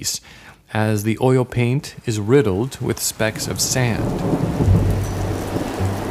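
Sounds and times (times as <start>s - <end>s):
speech: 0.0s - 4.8s
steady rain in a thunderstorm: 2.0s - 6.0s
deep rolling thunder rumbling: 3.1s - 6.0s.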